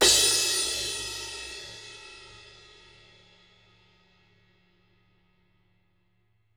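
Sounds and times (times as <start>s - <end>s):
drum kit crash cymbal: 0.0s - 3.9s.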